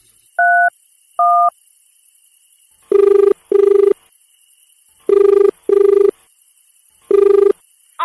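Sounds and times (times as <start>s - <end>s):
hiss: 0.0s - 8.0s
dual-tone telephone keypad beeps: 0.4s - 1.5s, 5.1s - 6.1s, 7.1s - 7.6s
telephone buzzing ringback tone: 2.9s - 4.0s, 5.1s - 6.1s, 7.1s - 7.6s.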